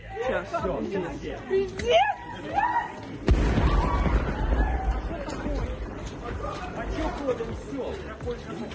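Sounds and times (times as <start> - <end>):
crowd of people chattering: 0.0 - 8.7
heavy explosion heard from railway platform: 3.2 - 7.2.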